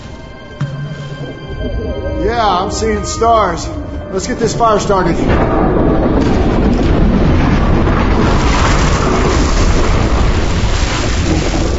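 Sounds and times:
loud explosion with heavy sustained rumbling roar: 2.0 - 11.7
speech: 2.6 - 5.6.

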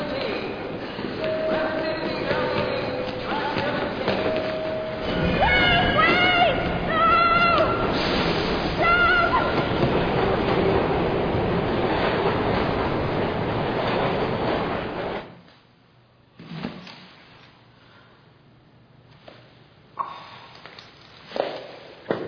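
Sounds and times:
train departing from a station rumbling: 0.0 - 15.4.

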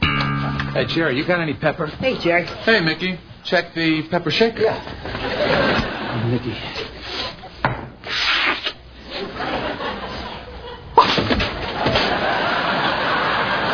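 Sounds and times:
speech: 0.8 - 5.6, 6.3 - 6.8
laughter: 5.1 - 7.6, 9.0 - 13.7
person forcing out fake sneezes: 8.0 - 8.8, 11.0 - 11.3.

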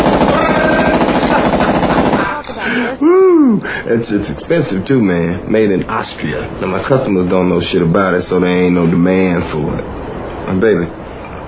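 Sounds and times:
Steyr AUG rifle firing a rapid burst: 0.0 - 2.4
laughter: 0.2 - 4.0
speech: 3.6 - 11.0.

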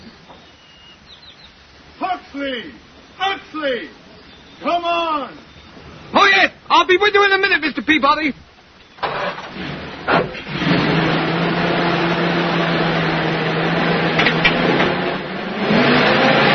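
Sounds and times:
speech: 2.3 - 4.0, 4.6 - 5.4, 6.2 - 8.4
car engine starting and revving as the car pulls away: 9.0 - 16.5.

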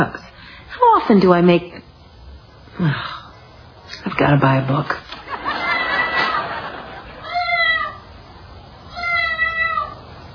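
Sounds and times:
speech: 0.0 - 0.2, 0.8 - 1.9, 2.8 - 3.2, 4.0 - 5.1
laughter: 5.1 - 7.6
cat meowing: 7.2 - 8.0, 8.9 - 10.0.

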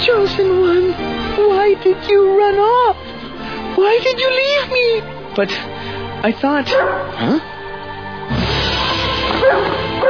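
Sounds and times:
speech: 0.1 - 3.1, 3.8 - 7.5
dog barking excitedly: 6.7 - 7.2, 9.4 - 10.0.

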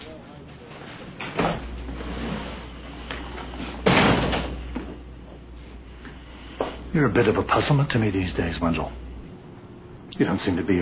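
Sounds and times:
low steady room hum: 0.0 - 10.8
door closing thud: 3.8 - 4.6
speech: 7.0 - 9.0, 10.2 - 10.8.

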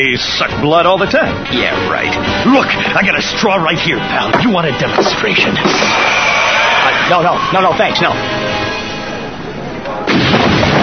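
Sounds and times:
speech: 0.0 - 6.3, 7.1 - 8.6
explosion rumbling: 10.1 - 10.8.

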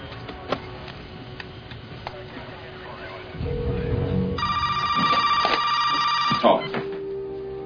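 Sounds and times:
low rumble: 3.3 - 5.0
telephone ringing with a bright trilling tone: 4.4 - 6.9.

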